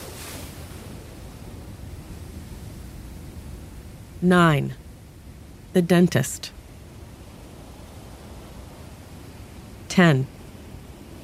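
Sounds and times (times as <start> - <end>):
ocean waves: 0.0 - 11.2
speech: 4.2 - 4.8, 5.8 - 6.6, 10.0 - 10.4.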